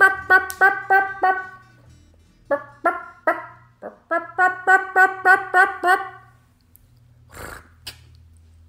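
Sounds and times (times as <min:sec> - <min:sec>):
turkey call imitating a gobbler's sharp raspy yelps: 0:00.0 - 0:01.6, 0:02.5 - 0:06.3.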